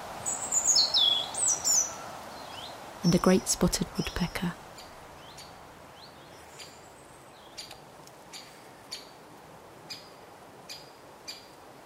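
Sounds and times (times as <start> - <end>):
chiffchaffs and robins singing in autumn woodland: 0.2 - 9.2
speech: 3.0 - 4.6.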